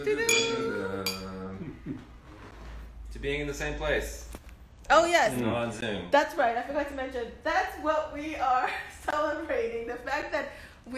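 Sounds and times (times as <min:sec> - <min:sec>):
speech: 0:00.0 - 0:00.4, 0:03.2 - 0:04.3, 0:04.9 - 0:10.9
glasses clinking in a toast: 0:00.2 - 0:01.4.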